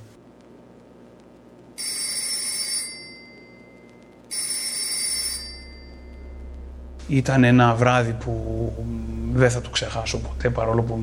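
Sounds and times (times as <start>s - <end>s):
telephone bell ringing: 1.8s - 6.4s
speech: 7.1s - 11.0s.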